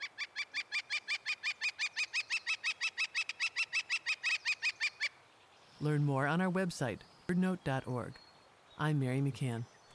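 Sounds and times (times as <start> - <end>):
northern flicker calling: 0.0 - 5.2
speech: 5.8 - 8.2, 8.8 - 9.7.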